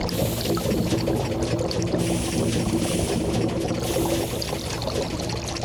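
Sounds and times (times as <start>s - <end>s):
distillery machinery idling: 0.0s - 5.5s.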